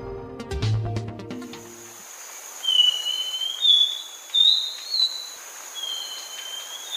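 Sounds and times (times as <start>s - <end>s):
quiet hiss: 1.6s - 6.9s
thrush-like schiffornis whistling call in Nariño and Boyacá: 2.6s - 6.9s.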